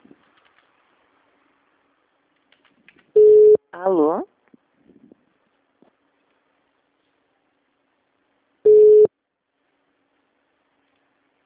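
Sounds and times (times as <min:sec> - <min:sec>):
telephone busy tone after a dropped call: 0:03.2 - 0:03.6, 0:08.7 - 0:09.1
speech: 0:03.8 - 0:04.3.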